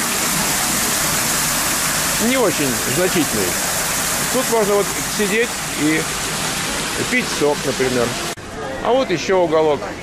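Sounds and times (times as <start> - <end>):
small waterfall splashing: 0.0 - 8.4
speech: 2.2 - 3.6, 4.3 - 6.2, 7.0 - 10.0.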